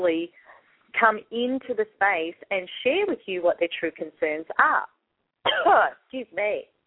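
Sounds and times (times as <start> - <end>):
speech: 1.0 - 6.7
person coughing: 5.5 - 5.9.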